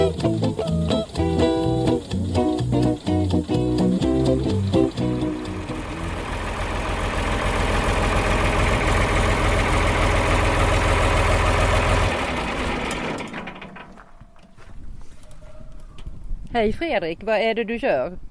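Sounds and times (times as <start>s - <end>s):
1965 John Deere 4020 diesel tractor engine idling on a farm in Halland, Sweden: 0.1s - 14.7s
speech: 16.6s - 18.2s.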